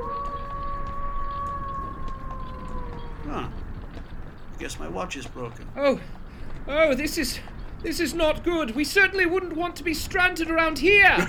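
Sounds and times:
wolf howling: 0.0s - 4.0s
low rumbling background: 0.0s - 9.7s
speech: 4.6s - 11.2s.

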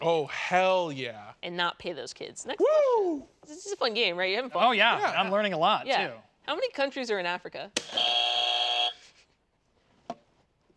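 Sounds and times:
speech: 0.0s - 8.3s
game show buzzer: 7.8s - 9.2s.

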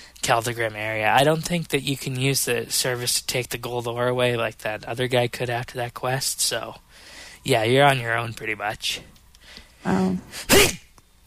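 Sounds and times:
speech: 0.3s - 9.1s, 9.8s - 10.8s
person sneezing: 9.8s - 10.9s.

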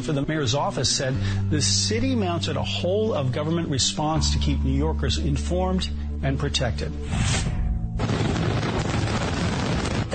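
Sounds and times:
speech: 0.0s - 8.2s
fireworks booming: 8.0s - 10.1s.

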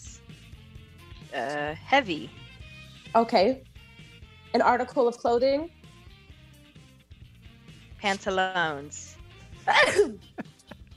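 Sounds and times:
speech: 1.3s - 2.4s, 3.1s - 3.7s, 4.5s - 5.8s, 8.0s - 10.5s
human sneeze: 9.7s - 10.2s.

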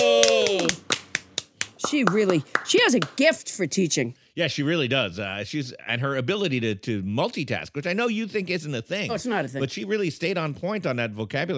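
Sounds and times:
person cheering: 0.0s - 1.0s
hands clapping: 0.0s - 3.3s
speech: 1.9s - 11.5s.

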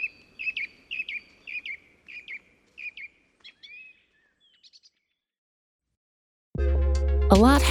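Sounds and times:
bird chirping with a bright sharp call and twittering: 0.0s - 5.3s
speech: 7.3s - 7.6s.

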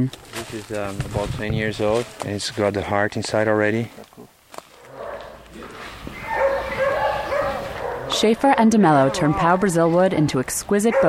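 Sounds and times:
speech: 0.0s - 4.3s, 8.2s - 11.0s
noisy outdoor background: 0.0s - 11.0s
dogs barking: 4.8s - 9.8s, 10.7s - 11.0s
dogs whimpering with high whining tones: 5.0s - 10.1s, 10.9s - 11.0s.

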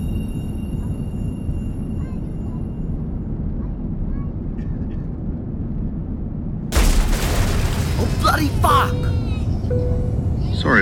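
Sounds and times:
spacecraft low engine rumble: 0.2s - 10.8s
debris striking a spacecraft: 6.7s - 10.2s.

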